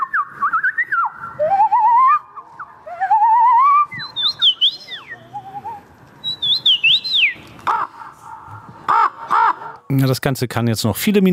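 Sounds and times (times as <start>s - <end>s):
contestant imitating whistled trills, chirps and crow-like caws: 0.9s - 9.9s
speech: 9.9s - 11.3s.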